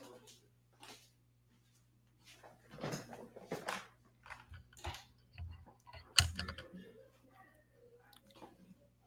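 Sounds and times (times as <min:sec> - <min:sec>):
soft rattles: 0:02.8 - 0:07.0
door being opened with clicks and wooden knocks of the latch and frame: 0:05.9 - 0:06.6.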